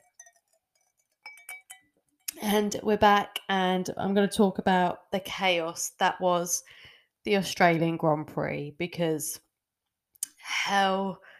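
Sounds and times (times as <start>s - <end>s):
wine glass clinking: 0.0s - 2.3s
speech: 2.4s - 9.4s, 10.4s - 11.3s.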